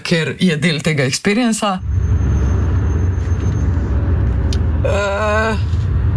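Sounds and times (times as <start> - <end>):
road and engine rumble from inside a moving car: 0.0 - 6.1
speech: 0.1 - 2.1, 4.8 - 5.7
car brakes squealing: 1.8 - 4.2.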